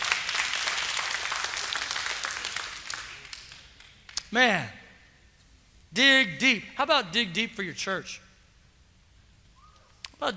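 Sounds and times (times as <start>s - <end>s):
church audience applauding: 0.0s - 4.1s
speech: 4.3s - 4.8s, 5.9s - 8.2s, 10.2s - 10.3s.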